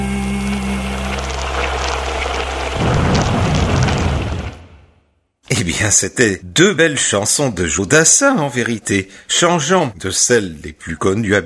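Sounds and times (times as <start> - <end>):
rain hissing: 0.0 - 4.8
rolling thunder: 1.2 - 4.9
speech: 5.8 - 11.4.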